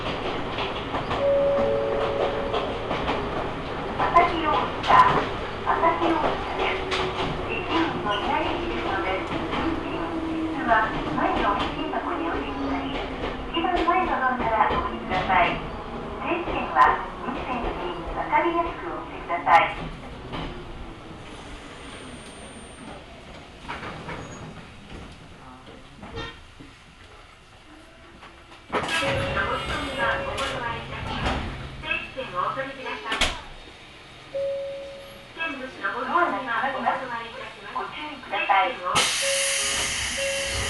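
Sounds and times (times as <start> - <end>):
low wheel rumble inside a local train: 0.0 - 40.6.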